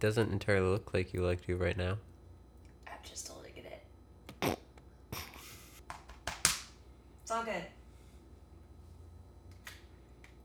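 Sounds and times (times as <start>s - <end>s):
speech: 0.0s - 2.1s, 3.0s - 3.4s, 7.3s - 7.8s
person coughing after inhaling smoke: 4.4s - 5.6s.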